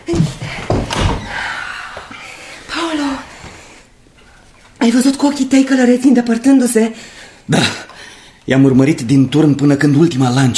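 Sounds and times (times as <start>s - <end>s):
door being closed with a short solid thunk: 0.1s - 1.4s
speech: 4.8s - 7.8s, 8.5s - 10.5s.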